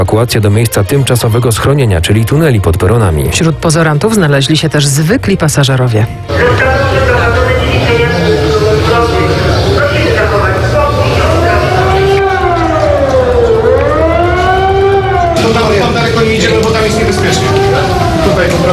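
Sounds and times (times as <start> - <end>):
speech: 0.0 - 7.4
civil defense siren wailing across a city: 6.3 - 18.7.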